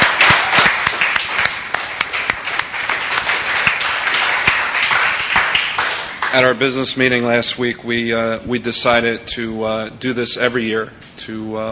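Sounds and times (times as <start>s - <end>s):
room full of people applauding: 0.0s - 6.6s
speech: 6.3s - 11.6s.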